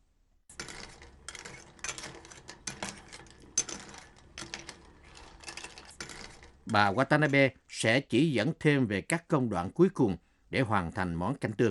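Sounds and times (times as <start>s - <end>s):
stirring miso broth with clams in a metal pot: 0.5s - 7.8s
speech: 6.7s - 11.6s.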